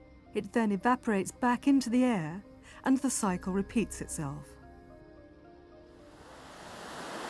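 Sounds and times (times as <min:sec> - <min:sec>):
speech: 0:00.4 - 0:04.6
tiny moorland stream trickling on the Plinlimmon Range in Mid Wales: 0:06.1 - 0:07.2.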